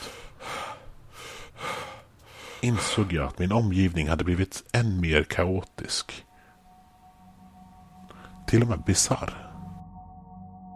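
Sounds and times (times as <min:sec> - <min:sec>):
person panting heavily after running: 0:00.0 - 0:03.1
speech: 0:02.6 - 0:06.3, 0:08.5 - 0:09.5.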